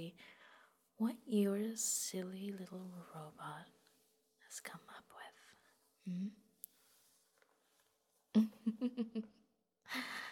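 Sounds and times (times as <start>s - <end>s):
speech: 0.0s - 0.4s, 1.0s - 3.8s, 4.5s - 5.4s, 6.0s - 6.4s, 8.4s - 10.2s
breathing as a synthetic vocal effect: 6.0s - 6.4s.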